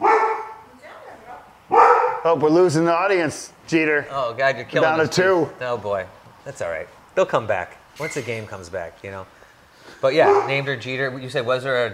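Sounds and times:
female dog barking: 0.0 - 0.7, 1.7 - 2.3, 10.2 - 10.7
speech: 2.2 - 11.9.

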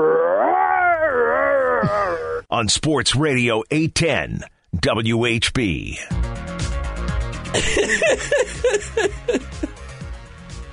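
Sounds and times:
person imitating a Wookiee roar: 0.0 - 2.5
speech: 1.8 - 6.4, 7.5 - 9.8
laughter: 7.6 - 9.7.

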